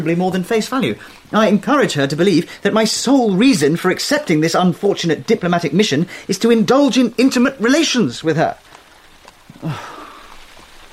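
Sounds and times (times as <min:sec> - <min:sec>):
speech: 0:00.0 - 0:08.7, 0:09.6 - 0:10.0
steady rain falling: 0:00.0 - 0:10.9
breathy sigh-like sound: 0:09.6 - 0:10.5.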